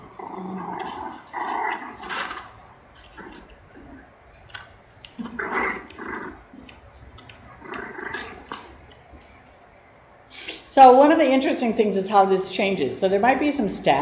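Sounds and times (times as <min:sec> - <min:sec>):
five-week-old puppies growling while play-fighting: 0:00.0 - 0:04.4, 0:05.1 - 0:09.4
speech: 0:10.8 - 0:14.0.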